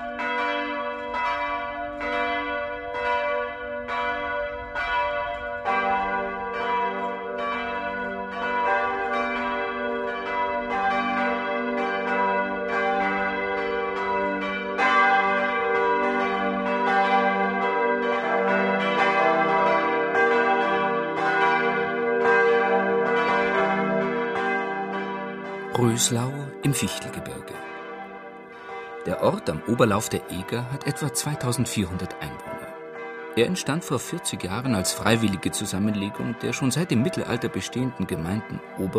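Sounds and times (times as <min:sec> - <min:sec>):
church bells in Röslau Germany ringing for Sunday noon: 0:00.0 - 0:38.9
speech: 0:26.0 - 0:27.6, 0:29.0 - 0:32.5, 0:33.4 - 0:38.9.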